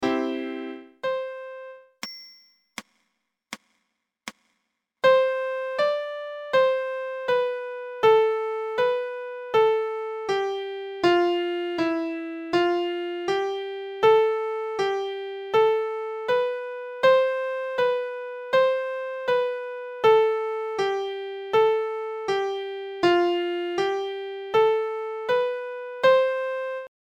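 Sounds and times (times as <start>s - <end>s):
piano: 0.0s - 2.0s, 5.0s - 26.9s.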